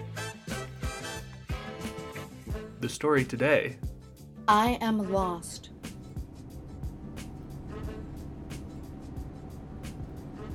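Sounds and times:
speech: 0:02.8 - 0:03.9, 0:04.5 - 0:05.7
city bus engine rumble: 0:05.2 - 0:10.5.

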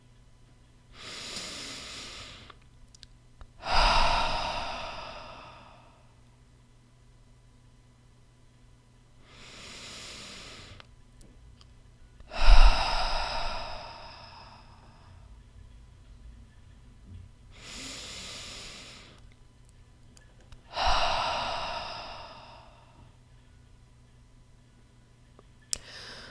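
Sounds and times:
deep breathing in through nose and out through mouth: 0:03.6 - 0:06.2, 0:09.2 - 0:10.9, 0:12.3 - 0:15.3, 0:17.5 - 0:19.2, 0:20.7 - 0:23.2, 0:25.8 - 0:26.2.

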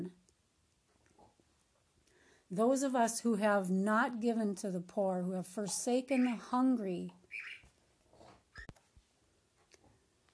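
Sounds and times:
speech: 0:02.5 - 0:07.6
bird clock chiming with high chirping calls: 0:07.3 - 0:07.6.

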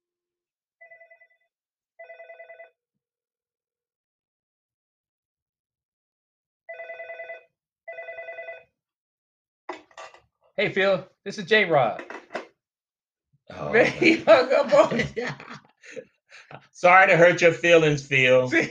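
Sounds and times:
outgoing phone call ringback tones: 0:02.0 - 0:02.7, 0:06.7 - 0:08.7
speech: 0:10.6 - 0:12.2, 0:13.7 - 0:18.6
laughter: 0:13.5 - 0:18.6.

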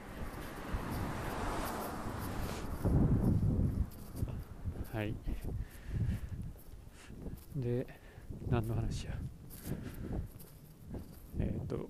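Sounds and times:
car passing by outdoors: 0:00.0 - 0:04.6
speech: 0:04.9 - 0:06.3, 0:07.2 - 0:10.3, 0:11.7 - 0:11.8.

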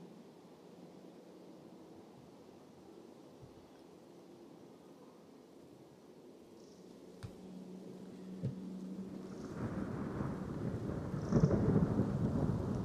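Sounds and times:
rain falling in a stormy spell: 0:08.4 - 0:12.8
deep thunder rumbling: 0:09.1 - 0:12.8.

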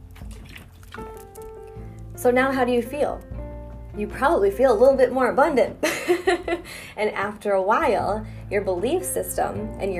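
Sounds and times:
sipping water: 0:00.0 - 0:02.2
speech: 0:01.0 - 0:01.2, 0:02.2 - 0:03.3, 0:04.0 - 0:09.9.

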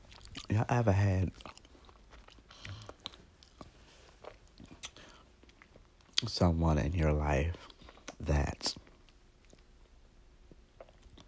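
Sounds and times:
person chewing food: 0:00.0 - 0:06.3, 0:07.5 - 0:11.2
speech: 0:00.5 - 0:01.6, 0:06.3 - 0:08.8
faint whispery breathing: 0:02.5 - 0:03.1, 0:04.9 - 0:05.4.

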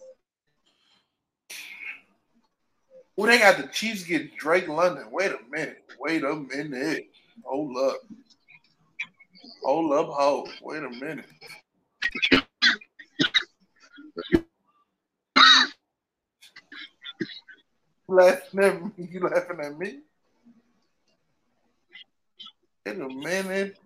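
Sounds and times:
throat-clearing: 0:01.5 - 0:02.0, 0:10.4 - 0:14.5, 0:15.4 - 0:15.8, 0:16.5 - 0:17.6
speech: 0:03.2 - 0:08.3, 0:09.6 - 0:11.6, 0:18.1 - 0:20.1, 0:22.9 - 0:23.8
coughs: 0:11.4 - 0:14.5, 0:15.4 - 0:15.8.

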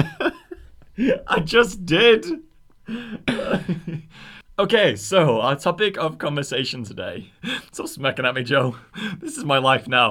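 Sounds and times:
laughter: 0:00.0 - 0:01.5, 0:03.3 - 0:04.1
speech: 0:01.0 - 0:10.0
person clearing throat: 0:03.3 - 0:03.7.

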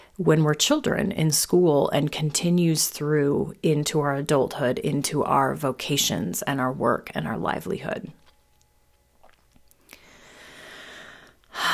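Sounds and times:
speech: 0:00.2 - 0:08.2
person taking a slow deep breath in: 0:09.9 - 0:11.7.

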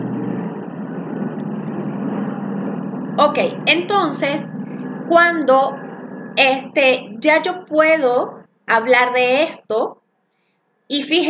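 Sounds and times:
helicopter engine rumble overhead: 0:00.0 - 0:08.6
speech: 0:03.2 - 0:05.8, 0:06.4 - 0:10.0, 0:10.9 - 0:11.2.

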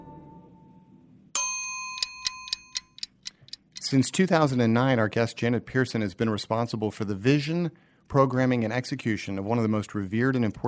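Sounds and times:
sharp bell-like ding: 0:01.4 - 0:03.0
bright metallic timer ticks: 0:02.0 - 0:04.0
speech: 0:03.9 - 0:10.6.

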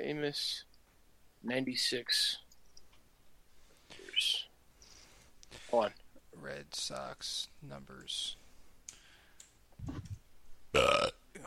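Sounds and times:
speech: 0:00.1 - 0:00.7, 0:01.4 - 0:02.4, 0:05.7 - 0:08.4, 0:10.8 - 0:11.4
faint clicks: 0:08.8 - 0:10.2
loud belch: 0:10.8 - 0:11.2
low gurgling burp: 0:10.8 - 0:11.2.

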